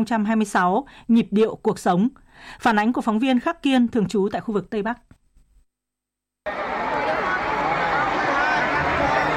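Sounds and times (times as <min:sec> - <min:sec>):
speech: 0:00.0 - 0:05.1
concert crowd cheering and roaring: 0:06.5 - 0:09.3.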